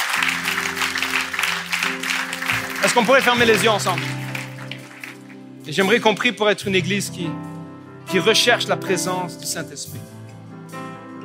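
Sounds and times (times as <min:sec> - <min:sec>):
church congregation applauding: 0:00.0 - 0:06.0
speech: 0:02.8 - 0:04.2, 0:05.6 - 0:07.5, 0:08.1 - 0:10.2.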